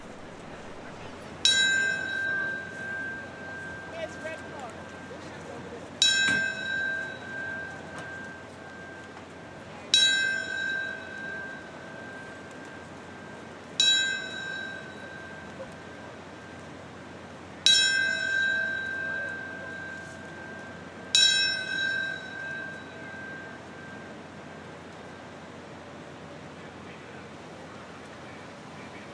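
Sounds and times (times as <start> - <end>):
memorial bell tolling: 0.0 - 16.0, 17.7 - 24.7.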